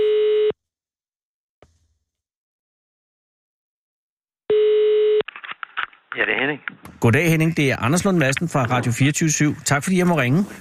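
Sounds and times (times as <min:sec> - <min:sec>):
telephone ringback tone: 0:00.0 - 0:00.5, 0:04.5 - 0:05.2
speech: 0:06.2 - 0:10.6.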